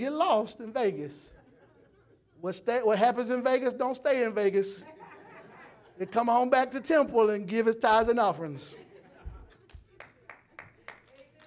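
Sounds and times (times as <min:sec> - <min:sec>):
speech: 0:00.0 - 0:01.4, 0:02.4 - 0:05.0, 0:06.0 - 0:08.8
laughter: 0:01.0 - 0:03.3, 0:04.2 - 0:07.5, 0:08.3 - 0:10.9
audience clapping in a large room: 0:09.5 - 0:11.4.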